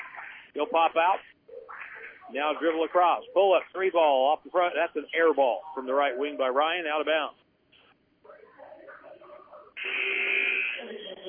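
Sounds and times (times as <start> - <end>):
speech: 0.6 - 1.4, 2.3 - 7.4
basketball arena buzzer blaring during a game: 9.8 - 11.0.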